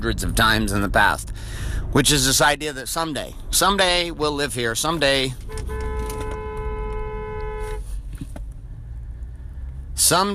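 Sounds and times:
speech: 0:00.0 - 0:05.8, 0:10.0 - 0:10.3
idling vehicle rumble: 0:00.0 - 0:10.3
road noise: 0:00.0 - 0:10.3
car horn honk: 0:05.4 - 0:08.0.

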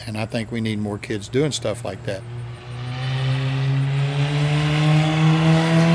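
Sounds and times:
speech: 0:00.0 - 0:02.4
race car engine droning at high revs on a track: 0:01.2 - 0:05.9.

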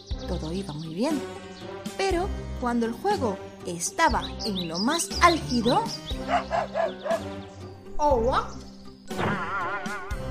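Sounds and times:
speech: 0:00.2 - 0:10.0
dog barking during play at a park: 0:06.2 - 0:07.3.

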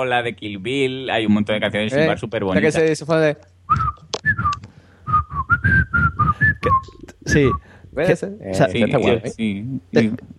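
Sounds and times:
speech: 0:00.0 - 0:03.8, 0:07.3 - 0:10.3
person whistling a short melody into a microphone: 0:03.7 - 0:07.6.

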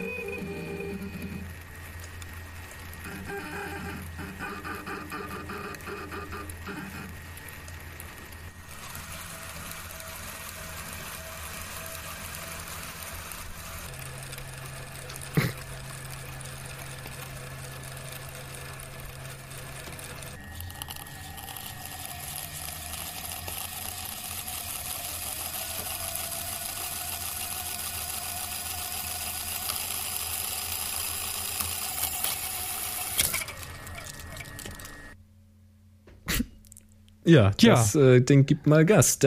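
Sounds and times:
washing machine running and spinning: 0:00.0 - 0:35.2
speech: 0:37.3 - 0:39.2.

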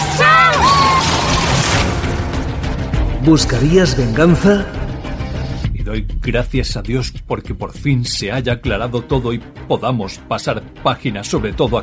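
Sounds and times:
car slamming into something with a loud violent crash: 0:00.0 - 0:02.9
speech: 0:03.2 - 0:04.8, 0:05.8 - 0:11.8.

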